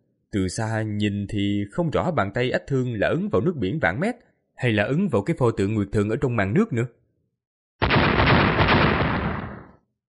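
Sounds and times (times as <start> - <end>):
speech: 0.3 - 7.0
explosion sound effect: 7.8 - 9.8.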